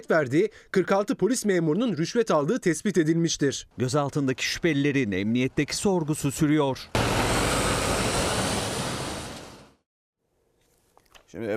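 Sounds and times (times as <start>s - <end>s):
speech: 0.0s - 7.4s, 11.3s - 11.5s
overloaded excavation dump trucks driving at excessive speed on a road: 4.4s - 9.8s.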